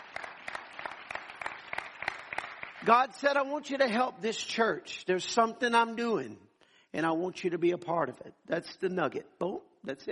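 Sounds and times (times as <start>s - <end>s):
small audience clapping: 0.0s - 3.2s
speech: 2.8s - 10.1s.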